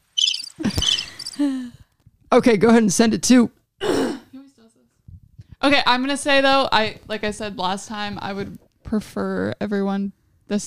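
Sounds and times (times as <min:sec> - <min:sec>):
shrill cricket chirping: 0:00.2 - 0:01.4
speech: 0:01.4 - 0:03.6, 0:05.6 - 0:10.6.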